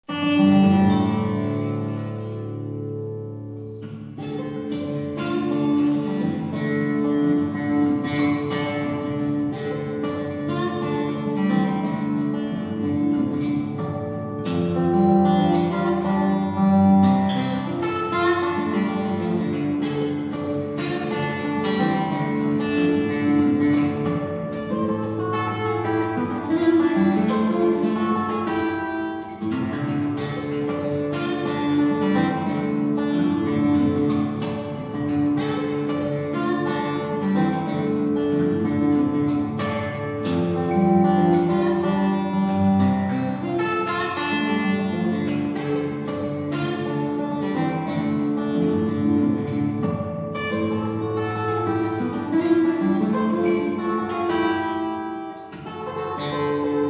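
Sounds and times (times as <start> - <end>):
acoustic guitar: 0.0 - 56.8.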